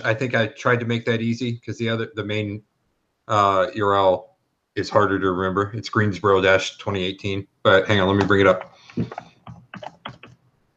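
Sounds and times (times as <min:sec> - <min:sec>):
speech: 0:00.0 - 0:02.7, 0:03.3 - 0:09.9
typing on a computer keyboard: 0:08.2 - 0:10.4.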